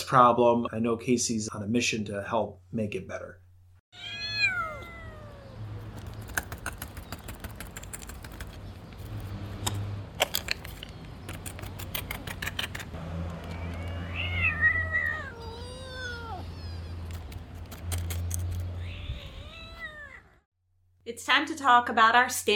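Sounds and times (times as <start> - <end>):
speech: 0.1 - 4.1, 21.4 - 22.5
little kittens meowing: 4.0 - 6.0, 13.4 - 17.5, 18.6 - 20.4
clicks and rattles: 5.9 - 13.9, 17.0 - 18.7.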